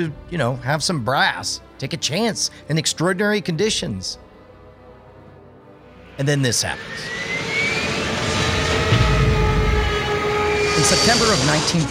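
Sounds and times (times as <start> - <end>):
speech: 0.0 - 4.2, 6.2 - 7.2, 10.8 - 11.8
loud airplane engine drone: 5.9 - 11.8
whining tonal hum of airplane: 6.0 - 11.8.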